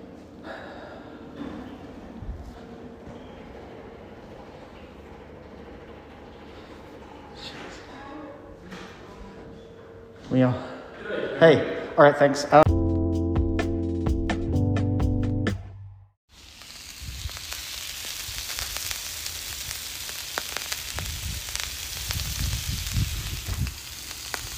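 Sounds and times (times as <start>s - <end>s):
speech: 10.3s - 10.7s, 11.4s - 12.7s
brief tonal music: 12.7s - 16.2s
food sizzling in a frying pan: 16.3s - 24.5s.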